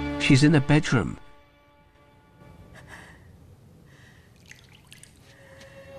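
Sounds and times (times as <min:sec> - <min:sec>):
speech: 0:00.2 - 0:01.2
water dripping in a bathroom: 0:04.3 - 0:05.8.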